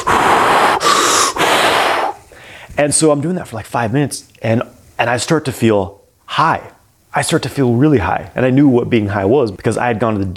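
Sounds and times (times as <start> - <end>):
rapid deep human breathing: 0.0 - 2.8
speech: 2.8 - 10.3.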